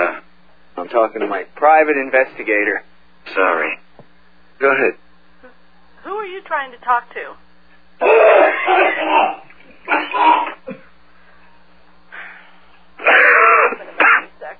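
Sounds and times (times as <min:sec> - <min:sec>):
faint low hum: 0:00.0 - 0:14.5
speech: 0:00.9 - 0:03.8, 0:04.6 - 0:07.4, 0:08.0 - 0:09.4
harsh loud coughing: 0:08.0 - 0:11.0, 0:13.0 - 0:14.4.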